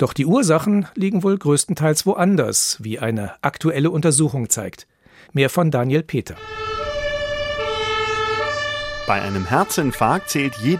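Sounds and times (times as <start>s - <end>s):
speech: 0.0s - 6.7s, 9.1s - 10.7s
ambulance siren wailing with two-tone pitch: 6.4s - 10.7s
low traffic rumble: 6.4s - 10.7s.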